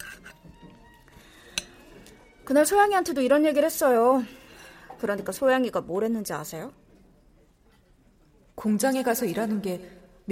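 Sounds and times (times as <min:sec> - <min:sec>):
knife and fork scraping and clattering on a plate: 0:00.0 - 0:00.8, 0:01.4 - 0:02.2
speech: 0:02.5 - 0:04.4, 0:05.0 - 0:06.8, 0:08.6 - 0:10.2.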